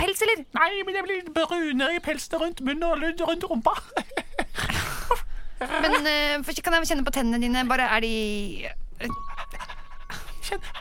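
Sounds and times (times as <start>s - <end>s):
speech: 0.2s - 4.8s, 5.6s - 9.3s, 10.5s - 10.7s
laughter: 3.7s - 6.3s
person imitating a dog panting with the tongue out: 9.1s - 10.7s.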